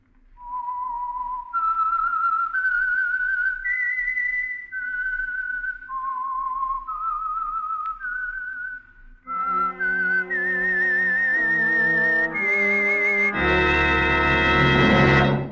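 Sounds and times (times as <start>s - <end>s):
lone whistler whistling a slow eerie radio theme melody: 0.4s - 14.3s
full orchestra playing a radio theme with a dramatic closing chord: 9.3s - 15.5s.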